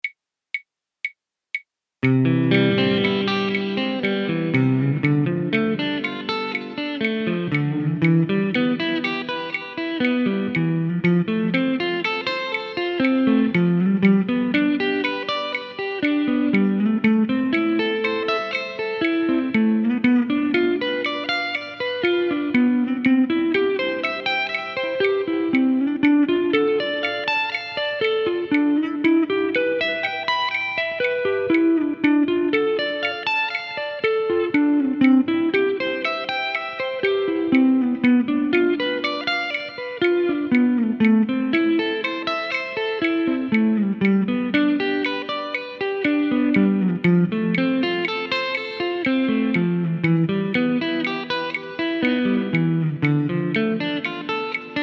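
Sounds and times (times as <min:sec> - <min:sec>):
guitar sweep picking: 0:02.0 - 0:54.8.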